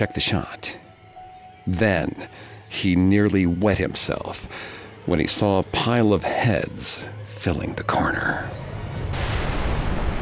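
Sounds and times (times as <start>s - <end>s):
speech: 0.0s - 0.8s, 1.6s - 9.2s
loud explosion with heavy deep rumble: 8.9s - 10.2s.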